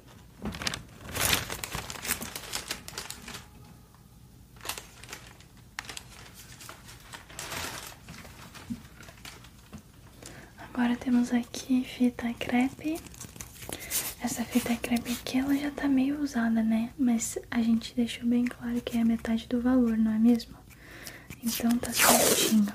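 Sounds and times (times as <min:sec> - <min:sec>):
plastic shopping bag rustling and crinkling: 0:00.0 - 0:03.7, 0:04.6 - 0:15.8
speech: 0:10.9 - 0:13.2, 0:14.2 - 0:20.6, 0:21.4 - 0:22.7.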